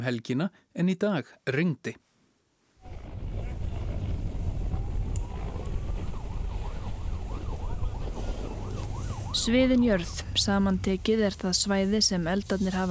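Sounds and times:
speech: 0:00.0 - 0:02.1, 0:09.4 - 0:12.8
emergency vehicle siren wailing: 0:02.8 - 0:12.3
heavy wind rumble: 0:02.8 - 0:12.8.

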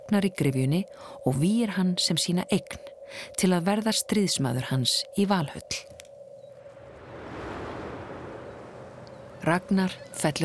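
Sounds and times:
wind: 0:00.0 - 0:10.4
speech: 0:00.1 - 0:05.9, 0:09.4 - 0:10.4
ocean waves: 0:06.6 - 0:10.4.

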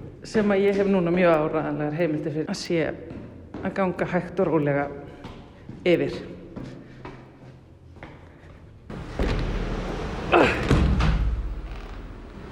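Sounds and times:
speech: 0:00.2 - 0:05.0, 0:05.8 - 0:06.7
continuous low roar: 0:08.9 - 0:12.4
living-room door being forced open during a storm: 0:08.9 - 0:12.4
loud knocks: 0:08.9 - 0:12.4.

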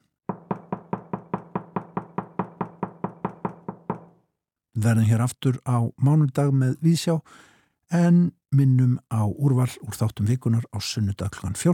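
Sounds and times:
firm knocks on a wooden door: 0:00.3 - 0:04.2
speech: 0:04.8 - 0:11.7.

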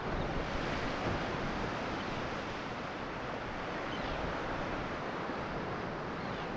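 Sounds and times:
gusty wind buffeting the microphone: 0:00.0 - 0:06.5
waves crashing into the shore and cliffs of an island by a lighthouse: 0:00.0 - 0:06.5.

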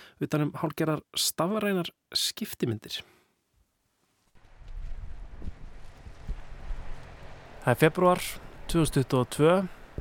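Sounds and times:
speech: 0:00.2 - 0:03.2, 0:07.6 - 0:09.8
wind gusts outdoors buffeting the microphone: 0:04.4 - 0:08.9.

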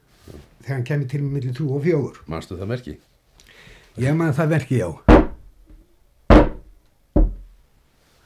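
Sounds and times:
speech: 0:00.7 - 0:03.1, 0:04.0 - 0:05.1
knocks imitating a coded door knock: 0:05.1 - 0:05.5, 0:06.3 - 0:07.6.

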